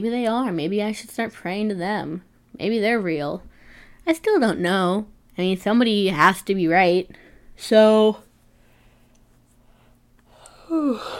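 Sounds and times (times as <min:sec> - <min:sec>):
speech: 0:00.0 - 0:08.2, 0:10.7 - 0:11.1
person yawning: 0:10.3 - 0:11.1.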